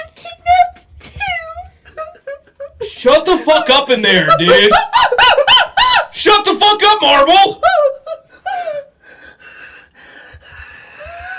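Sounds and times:
laughter: 1.8 - 6.2
speech: 3.0 - 4.9, 6.2 - 7.7
heavy ragged breathing of a scared kidnapped person: 8.4 - 11.3.

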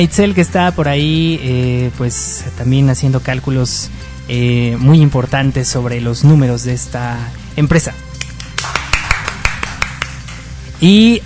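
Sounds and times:
speech: 0.0 - 8.1, 10.8 - 11.2
people clapping: 8.1 - 10.5.

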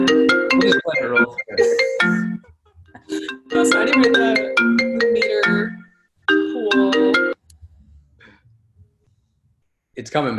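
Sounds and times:
mobile phone ringtone with bright electronic melody: 0.0 - 2.4, 3.1 - 7.4
speech: 0.6 - 2.2, 3.6 - 5.6, 10.0 - 10.3.

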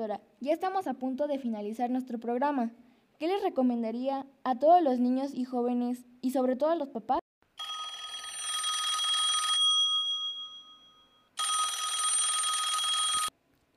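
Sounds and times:
speech: 0.0 - 7.2
telephone ringing with an incoming call: 7.6 - 13.3.

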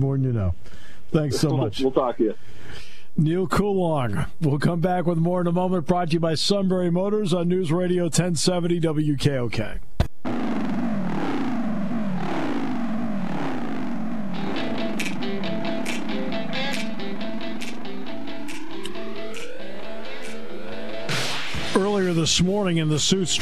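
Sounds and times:
speech: 0.0 - 9.9, 22.1 - 23.4
aircraft engine starting up in a driveway: 10.3 - 21.8.

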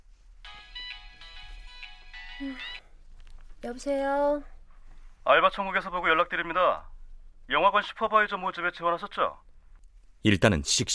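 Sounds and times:
faint low hum: 0.0 - 10.9
mobile phone ringtone: 0.4 - 2.8
speech: 2.4 - 2.8, 3.6 - 4.6, 5.2 - 6.9, 7.5 - 9.5, 10.2 - 10.9.

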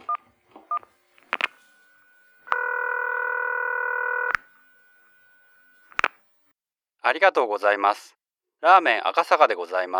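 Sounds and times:
steady telephone ringback tone: 0.0 - 6.3
click as the telephone line picks up: 0.7 - 6.3
telephone keypad dialing beeps: 1.4 - 5.8
speech: 7.1 - 9.9.

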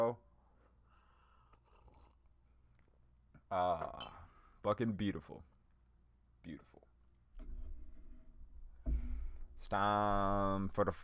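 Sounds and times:
speech: 0.0 - 0.2, 3.5 - 5.5, 6.4 - 6.9, 9.6 - 11.0
breathing: 0.4 - 2.1, 4.2 - 4.6, 8.8 - 9.6
person sipping coffee: 1.2 - 2.9
short slurp of coffee: 1.4 - 2.3
soft wet mouth noises: 1.4 - 2.9.

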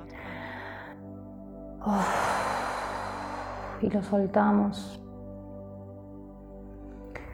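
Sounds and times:
deep drawn-out breath in and out: 0.0 - 3.8
speech: 1.8 - 2.1, 3.8 - 5.0.

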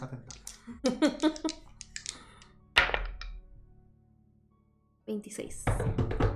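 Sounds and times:
dice rattling and tumbling onto a hard surface: 0.3 - 3.4
speech: 5.2 - 6.3.

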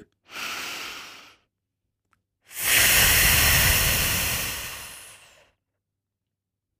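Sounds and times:
deep inhale through the nose during a breathing exercise: 0.3 - 1.5, 2.5 - 5.6.

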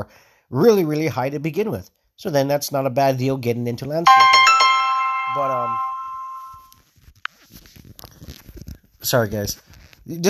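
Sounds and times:
speech: 0.0 - 4.5, 5.3 - 5.9, 9.0 - 10.2
phone message notification chime with rising tone: 4.1 - 6.7.

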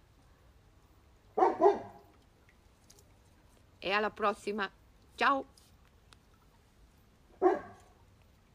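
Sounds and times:
dog barking: 1.4 - 2.0, 7.4 - 7.9
speech: 3.9 - 5.6.

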